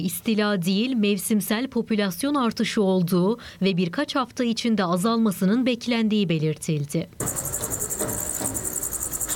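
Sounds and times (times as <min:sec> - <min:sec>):
speech: 0:00.0 - 0:07.6
giant crickets chirping: 0:07.2 - 0:09.3.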